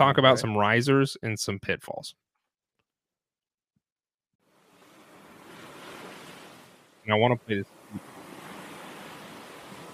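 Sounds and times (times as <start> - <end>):
speech: 0.0 - 2.2, 7.1 - 8.1
ocean waves washing onto shore: 4.4 - 9.9.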